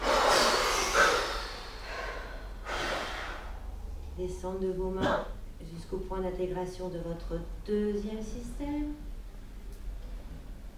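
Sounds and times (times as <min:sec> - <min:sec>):
slow breathy exhalation during guided relaxation exercise: 0:00.0 - 0:03.8
speech: 0:04.2 - 0:09.1.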